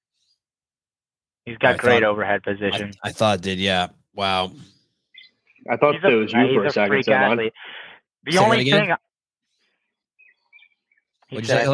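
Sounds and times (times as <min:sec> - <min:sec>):
speech: 0:01.5 - 0:04.8, 0:05.6 - 0:09.1, 0:11.3 - 0:11.7
faint high bird tweet: 0:04.6 - 0:05.8, 0:09.4 - 0:11.6.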